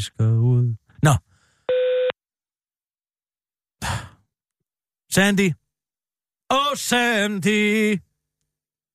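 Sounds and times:
speech: 0:00.0 - 0:01.3, 0:05.2 - 0:05.6, 0:06.5 - 0:08.1
voicemail answering machine beep tone: 0:01.7 - 0:02.2.

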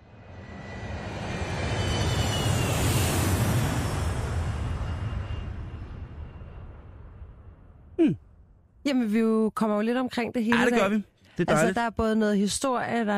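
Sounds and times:
airplane flying past with engine roar: 0:00.0 - 0:06.7
speech: 0:08.8 - 0:13.1.

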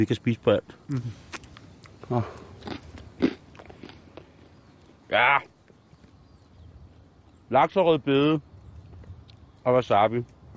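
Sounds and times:
speech: 0:00.0 - 0:01.3, 0:02.1 - 0:02.8, 0:05.1 - 0:05.5, 0:07.5 - 0:08.5, 0:09.6 - 0:10.3
softer crunching chews of bread: 0:00.6 - 0:07.5, 0:08.5 - 0:10.5
crisp bite into crunchy bread served with salmon: 0:00.9 - 0:05.0.

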